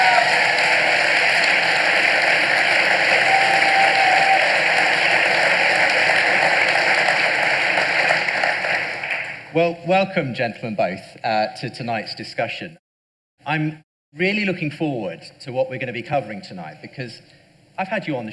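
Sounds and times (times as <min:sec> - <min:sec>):
large audience applauding at an evening discussion event: 0:00.0 - 0:09.5
speech: 0:09.6 - 0:12.8, 0:13.5 - 0:18.3.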